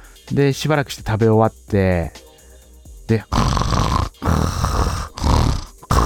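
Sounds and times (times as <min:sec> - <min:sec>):
speech: 0:00.3 - 0:02.2, 0:03.1 - 0:03.6
voice imitating a man snoring: 0:03.2 - 0:06.0.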